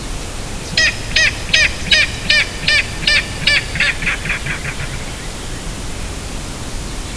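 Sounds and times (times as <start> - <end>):
King Rail kek hurrah call: 0.0 - 7.1.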